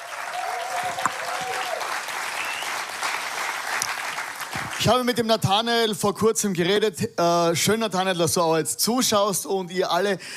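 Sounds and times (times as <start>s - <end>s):
audience applause: 0.0s - 5.0s
faint tonal whistle or ring: 2.4s - 2.8s
speech: 4.8s - 10.3s.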